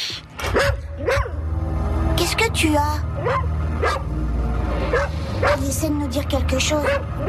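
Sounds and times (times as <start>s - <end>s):
steady low hum: 0.1s - 7.2s
dog barking and yipping: 0.4s - 1.4s, 3.2s - 4.1s, 4.9s - 5.6s, 6.8s - 7.2s
speech: 2.4s - 4.2s, 4.9s - 7.2s.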